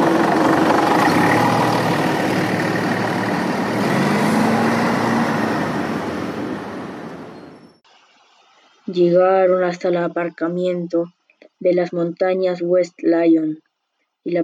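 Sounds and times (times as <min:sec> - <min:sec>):
bus engine running: 0:00.0 - 0:07.8
speech: 0:08.9 - 0:14.4.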